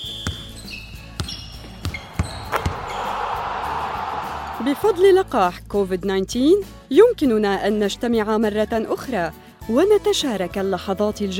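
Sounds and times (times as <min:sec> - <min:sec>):
sharp sneaker squeaks: 0:00.0 - 0:03.2
basketball thumping on a hard court: 0:00.0 - 0:03.4
speech: 0:04.6 - 0:11.3.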